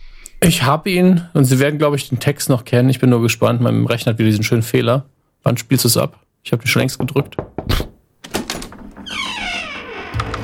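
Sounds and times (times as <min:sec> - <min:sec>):
speech: 0:00.4 - 0:07.9
door creaking open with a long squeak: 0:07.4 - 0:10.4.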